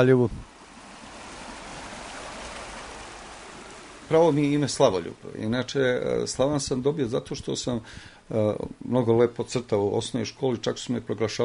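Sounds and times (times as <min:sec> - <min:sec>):
speech: 0:00.0 - 0:00.5, 0:04.1 - 0:11.4
Kolubara river flowing by the town of Valjevo: 0:00.5 - 0:05.5.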